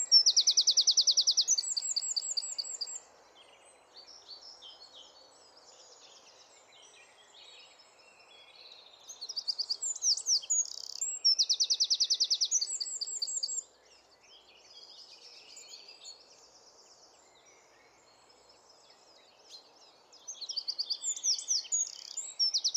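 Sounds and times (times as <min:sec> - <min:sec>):
Eurasian wren song: 0:00.0 - 0:22.7
low background hiss: 0:00.0 - 0:22.7.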